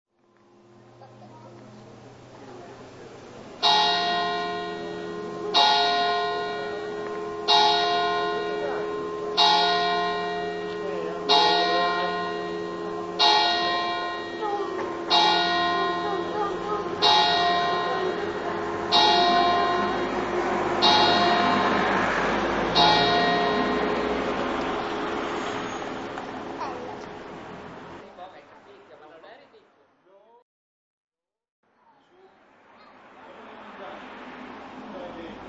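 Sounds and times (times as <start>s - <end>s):
bells ringing: 0.4s - 28.0s.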